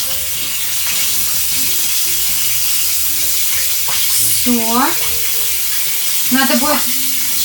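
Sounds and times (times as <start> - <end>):
hot oil sizzling and spattering in a frying pan: 0.0 - 7.4
speech: 4.4 - 5.1, 6.3 - 7.0.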